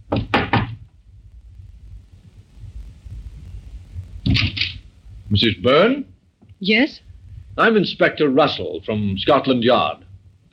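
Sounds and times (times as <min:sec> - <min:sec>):
knocking on the wooden door of a small flat: 0:00.1 - 0:00.8
low rumble: 0:00.8 - 0:10.5
speech: 0:05.3 - 0:10.0.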